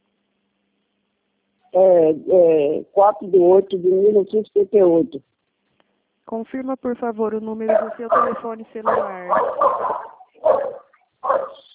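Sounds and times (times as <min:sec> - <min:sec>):
speech: 0:01.8 - 0:05.4, 0:06.3 - 0:11.5
dog barking: 0:07.7 - 0:11.7.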